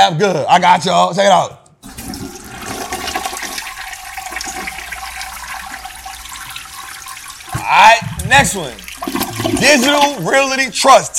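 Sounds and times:
speech: 0.0s - 1.6s, 7.7s - 11.1s
toilet flushing: 1.8s - 10.7s.

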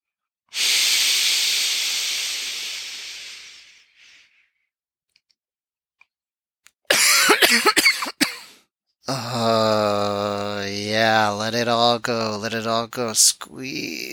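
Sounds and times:
long breathy exhale: 0.5s - 4.5s
harsh rapid coughs: 6.9s - 8.6s
drawn-out voiced groan: 9.1s - 10.8s
speech: 11.4s - 14.1s.

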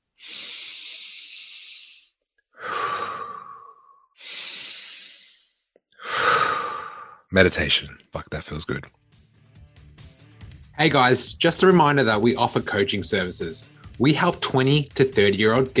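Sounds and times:
slow deep breathing in a relaxing bedtime breathing exercise: 0.0s - 7.3s
speech: 7.3s - 9.0s, 10.8s - 15.7s.

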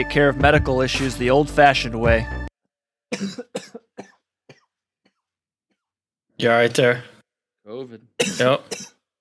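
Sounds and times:
speech: 0.0s - 2.4s, 3.1s - 3.8s, 6.4s - 7.1s, 7.7s - 8.9s
man coughing while drinking beer: 3.1s - 4.7s, 8.2s - 9.0s.

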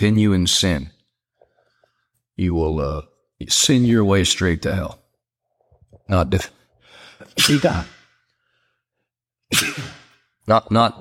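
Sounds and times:
speech: 0.0s - 1.0s, 2.4s - 5.0s, 6.1s - 6.6s, 7.2s - 8.0s, 10.5s - 10.9s
loud sneezing: 7.2s - 8.2s, 9.5s - 10.3s.

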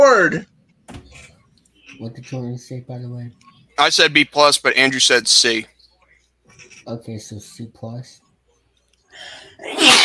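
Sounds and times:
speech: 0.0s - 0.5s, 2.0s - 5.8s, 6.6s - 8.2s, 9.2s - 10.0s
person sneezing: 9.6s - 10.0s.

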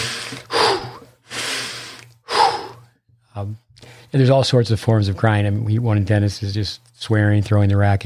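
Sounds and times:
slow deliberate breathing in through the nose and out through the mouth: 0.0s - 3.0s, 3.8s - 4.2s
speech: 3.4s - 8.0s.

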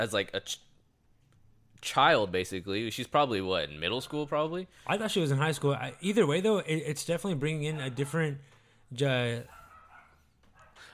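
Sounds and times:
speech: 0.0s - 0.7s, 1.8s - 9.6s
dog barking: 7.6s - 8.4s, 9.4s - 10.9s
dog yelping: 7.7s - 8.3s, 9.5s - 10.9s.

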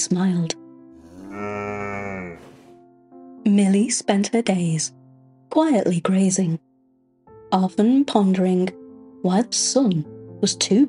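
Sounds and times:
speech: 0.0s - 0.6s, 3.5s - 6.7s, 7.5s - 10.8s
cow mooing in a meadow: 1.0s - 2.7s.

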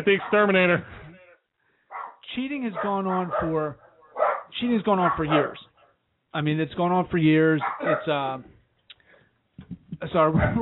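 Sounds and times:
speech: 0.0s - 1.0s, 2.4s - 3.8s, 4.6s - 5.7s, 6.3s - 8.6s, 9.6s - 10.6s
chihuahua barking: 0.2s - 0.5s, 1.9s - 2.2s, 2.8s - 5.8s, 7.6s - 8.1s.

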